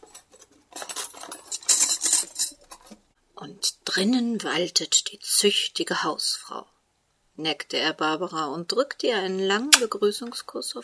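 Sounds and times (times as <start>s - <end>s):
dishes and cutlery clattering in a kitchen: 0.0s - 3.0s
speech: 4.0s - 6.7s, 7.4s - 10.8s.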